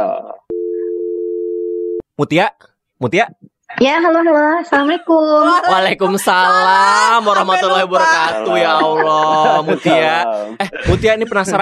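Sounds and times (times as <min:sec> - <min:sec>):
telephone ringback tone while placing a call: 0:00.5 - 0:02.0
speech: 0:02.2 - 0:11.6
laughter: 0:05.4 - 0:11.6.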